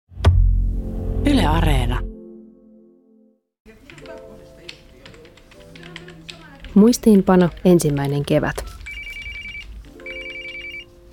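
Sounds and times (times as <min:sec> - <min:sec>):
speech: 0:01.5 - 0:02.1, 0:06.8 - 0:08.6
telephone ringing in trilling bursts: 0:08.5 - 0:11.0.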